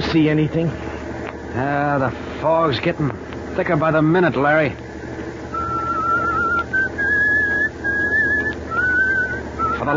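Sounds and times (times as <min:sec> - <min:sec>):
speech: 0:00.1 - 0:00.8, 0:01.5 - 0:04.8
person whistling a slow tune: 0:05.5 - 0:09.9.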